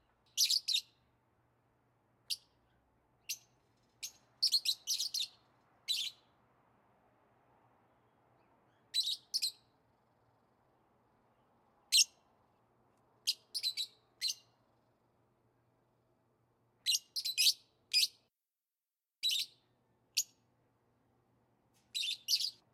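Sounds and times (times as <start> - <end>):
yellow-collared lovebird giving sharp high squeaky chirps: 0.4 - 0.9, 3.2 - 6.3, 8.7 - 9.6, 11.9 - 12.2, 13.3 - 14.5, 16.8 - 18.2, 19.2 - 19.6, 21.9 - 22.6.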